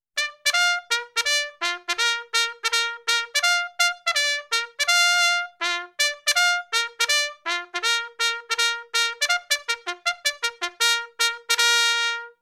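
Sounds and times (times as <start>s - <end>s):
trumpet playing with a happy vibe: 0.2s - 12.4s.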